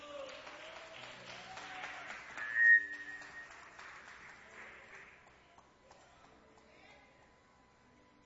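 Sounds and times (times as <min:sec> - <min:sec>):
crowd clapping at a church service: 0:00.0 - 0:06.7
whistles: 0:02.3 - 0:04.0.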